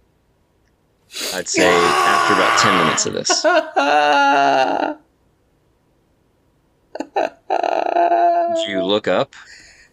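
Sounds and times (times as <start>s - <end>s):
speech: 1.3s - 5.0s, 8.5s - 9.6s
voice imitating wailing drunken sobbing: 1.5s - 5.0s, 7.0s - 8.9s.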